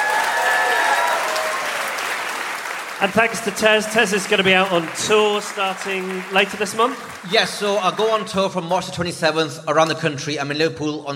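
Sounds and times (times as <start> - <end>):
audience applause at the end of a panel discussion: 0.0 - 8.4
speech: 3.0 - 11.1.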